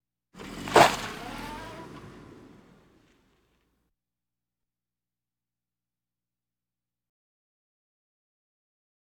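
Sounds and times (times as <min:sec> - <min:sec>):
various automobiles: 0:00.4 - 0:03.7.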